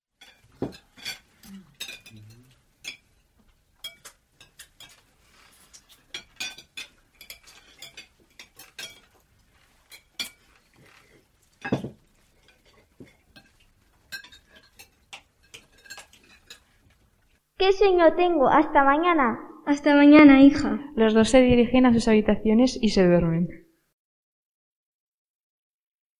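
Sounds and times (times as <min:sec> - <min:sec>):
plates and cutlery clattering as a table is cleared after dinner: 0:00.2 - 0:17.1
speech: 0:00.6 - 0:00.9, 0:17.6 - 0:23.6.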